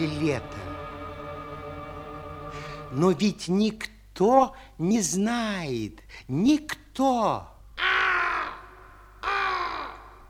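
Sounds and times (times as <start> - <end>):
speech: 0.0 - 0.7, 2.9 - 7.5
raven cawing: 7.8 - 10.2.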